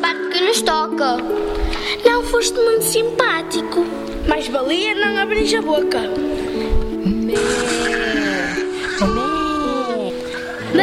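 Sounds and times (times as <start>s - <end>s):
speech: 0.0s - 6.7s
sheep bleating: 7.4s - 10.2s.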